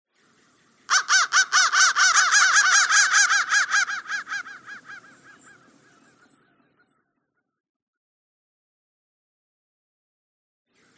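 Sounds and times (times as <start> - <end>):
crow uttering raspy arched caw notes: 0.9 - 7.0.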